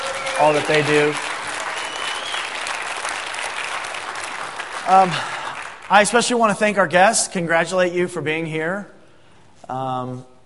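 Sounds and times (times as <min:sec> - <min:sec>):
audience applause for company leadership at a corporate gathering: 0:00.0 - 0:06.4
speech: 0:00.4 - 0:01.3, 0:04.9 - 0:09.0, 0:09.7 - 0:10.3.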